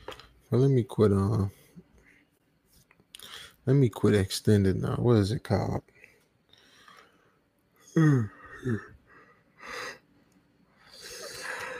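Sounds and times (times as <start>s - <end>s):
speech: 0.5s - 1.6s, 3.7s - 5.9s, 8.0s - 8.9s
drawn-out yawn with voiced groan and airy exhale: 7.9s - 9.0s, 10.9s - 11.7s.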